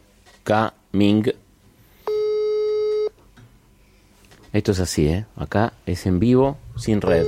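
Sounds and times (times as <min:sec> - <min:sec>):
faint noise: 0:00.0 - 0:07.2
speech: 0:00.5 - 0:01.4, 0:04.5 - 0:07.2
telephone ringback tone on a live call: 0:02.1 - 0:03.1, 0:07.1 - 0:07.2.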